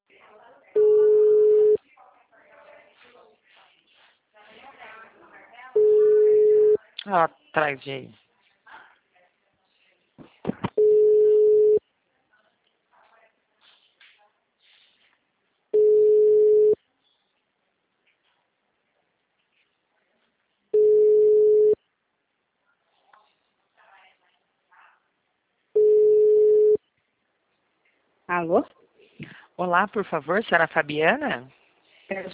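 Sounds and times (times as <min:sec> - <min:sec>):
telephone ringback tones before a call is answered: 0:00.8 - 0:01.8, 0:05.8 - 0:06.8, 0:10.8 - 0:11.8, 0:15.8 - 0:16.8, 0:20.8 - 0:21.8, 0:25.8 - 0:26.8
speech: 0:07.1 - 0:08.2, 0:29.7 - 0:32.3.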